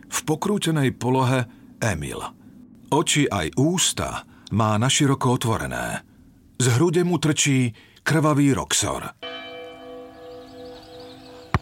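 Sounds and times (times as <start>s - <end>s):
speech: 0.3s - 9.3s
church death knell bell tolling in a village: 9.2s - 11.5s.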